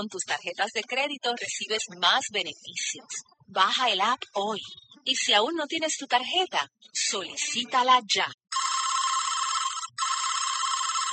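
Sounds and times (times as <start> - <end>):
speech: 0.0 - 8.4
telephone ringing unanswered with a buzzing electronic trill: 8.5 - 11.1.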